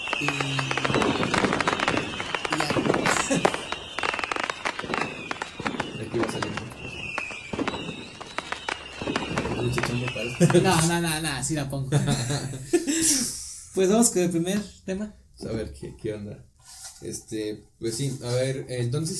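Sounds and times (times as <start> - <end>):
sharp firework bangs: 0.0 - 11.5
fireworks crackling and popping: 0.0 - 14.7
speech: 0.2 - 0.8, 10.4 - 19.1
laughter: 3.0 - 3.7, 10.0 - 11.0, 11.8 - 13.4.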